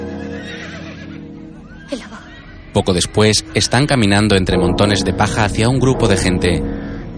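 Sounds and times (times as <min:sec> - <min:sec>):
two horses neighing and whinnying: 0:00.1 - 0:03.9
speech: 0:01.9 - 0:02.2, 0:02.8 - 0:06.9.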